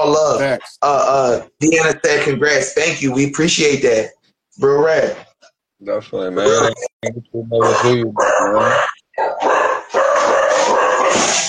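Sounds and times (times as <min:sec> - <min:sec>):
speech: 0:00.1 - 0:09.5
dogs howling: 0:07.6 - 0:11.2.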